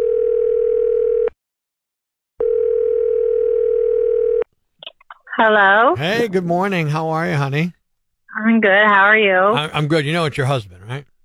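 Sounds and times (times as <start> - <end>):
telephone line tone: 0.0 - 1.3, 2.4 - 4.4
speech: 5.4 - 7.8, 8.4 - 11.1.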